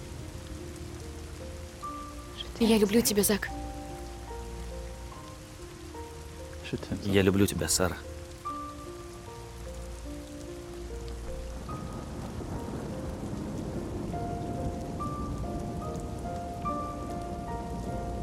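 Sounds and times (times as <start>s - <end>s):
heavy rain downpour: 0.0s - 18.2s
soft sustained musical tones: 0.0s - 18.2s
speech: 2.6s - 3.6s, 6.7s - 8.2s.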